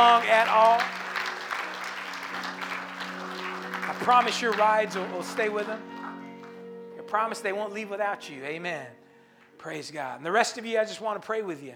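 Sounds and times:
church audience clapping: 0:00.0 - 0:07.3
speech: 0:04.0 - 0:05.9, 0:07.1 - 0:09.0, 0:09.6 - 0:11.7.

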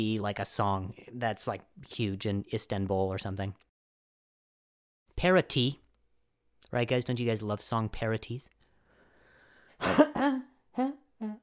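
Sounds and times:
speech: 0:00.0 - 0:03.6, 0:05.2 - 0:05.8, 0:06.7 - 0:08.6, 0:09.8 - 0:11.4
loud throat-clearing coughs: 0:09.8 - 0:10.5.

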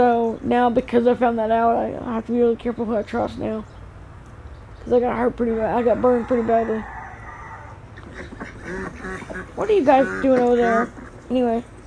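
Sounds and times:
speech: 0:00.0 - 0:03.8, 0:04.8 - 0:07.0, 0:08.2 - 0:11.7
steady farmyard background: 0:00.0 - 0:11.8
ducks quacking and clamoring for food: 0:05.5 - 0:11.6.

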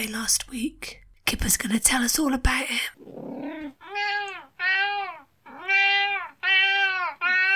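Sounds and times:
speech: 0:00.0 - 0:03.4
cat meowing loudly and insistently: 0:03.5 - 0:07.5.

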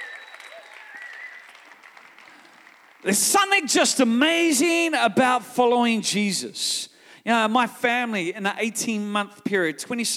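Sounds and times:
church congregation clapping in praise: 0:00.0 - 0:04.4
speech: 0:03.0 - 0:10.1.

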